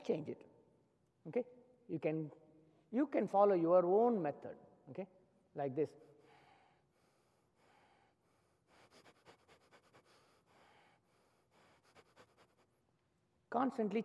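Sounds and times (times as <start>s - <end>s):
speech: 0.0s - 0.5s, 1.2s - 6.1s, 13.5s - 14.0s
rapid irregular breathing and sniffing through the nose: 6.2s - 12.8s.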